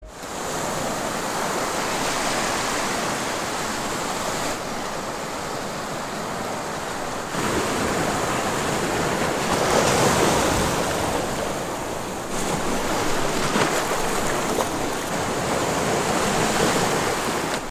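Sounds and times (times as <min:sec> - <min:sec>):
sea at a barnacle-gatherers' coast: 0:00.0 - 0:17.6.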